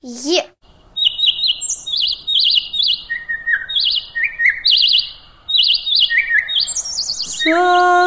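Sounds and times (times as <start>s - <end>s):
person speaking: 0.0s - 0.6s
nightingale singing rapid trills and whistled phrases: 0.6s - 8.0s.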